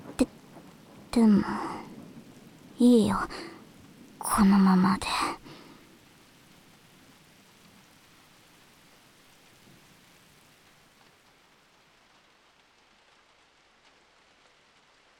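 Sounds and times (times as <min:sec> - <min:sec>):
thunder rumble: 0:00.0 - 0:07.0
dense rainfall in a thunderstorm: 0:00.0 - 0:15.1
speech: 0:01.2 - 0:01.7, 0:02.8 - 0:03.5, 0:04.2 - 0:05.4.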